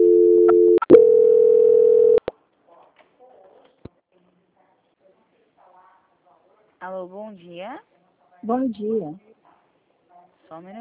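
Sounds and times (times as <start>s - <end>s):
steady low telephone tone during a call transfer: 0.0s - 2.2s
speech: 6.9s - 9.3s, 10.5s - 10.7s.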